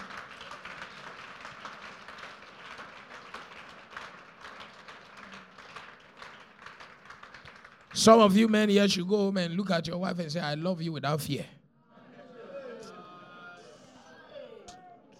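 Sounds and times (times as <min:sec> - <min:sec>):
crowd applauding: 0:00.0 - 0:09.0
speech: 0:08.0 - 0:11.6.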